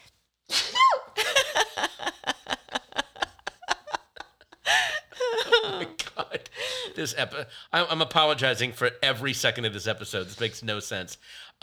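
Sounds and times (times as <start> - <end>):
person sneezing: 0.5 - 1.2
breathy laughter and giggling: 1.2 - 7.0
speech: 7.0 - 11.6.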